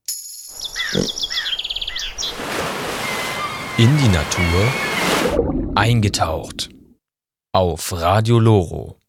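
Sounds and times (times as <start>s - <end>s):
common swifts screaming: 0.6s - 5.4s
speech: 0.9s - 1.2s, 3.8s - 6.7s, 7.6s - 9.0s.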